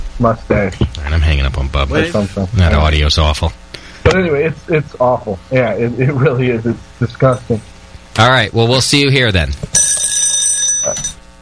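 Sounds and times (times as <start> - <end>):
speech: 0.2 - 10.0, 10.8 - 11.2
timer alarm ringing: 9.7 - 11.2.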